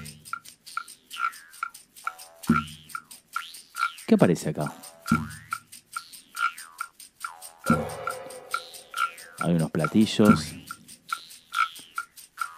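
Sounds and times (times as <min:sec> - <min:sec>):
wooden claves clicking: 0:00.0 - 0:12.5
speech: 0:04.1 - 0:05.2, 0:09.5 - 0:10.6
guiro scraping: 0:07.7 - 0:09.5.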